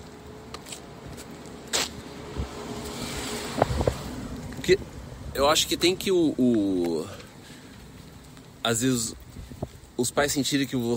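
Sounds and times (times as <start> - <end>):
car passing by: 0.3 - 6.1
speech: 4.7 - 7.2, 8.6 - 9.2, 10.0 - 10.9.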